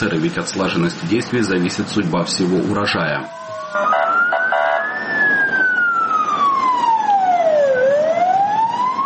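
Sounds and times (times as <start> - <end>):
speech: 0.0 - 4.0
steady traffic-like rumble: 0.0 - 9.0
fire engine siren wailing as crews arrive at a burning wheat field in Liman: 2.2 - 9.0.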